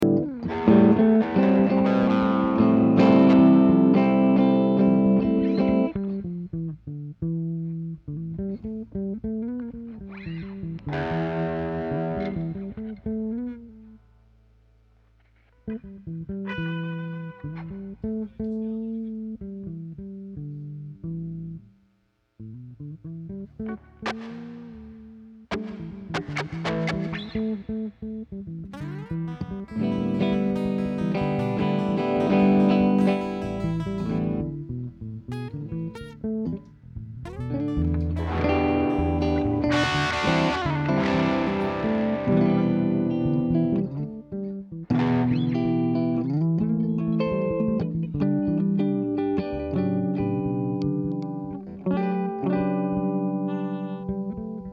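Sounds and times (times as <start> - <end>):
guitars: 0.0 - 21.8, 22.4 - 54.7
bass: 0.0 - 54.7.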